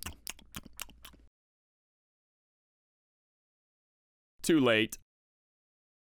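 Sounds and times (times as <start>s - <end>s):
crunchy tacos being chewed: 0.0s - 1.3s
speech: 4.5s - 5.0s.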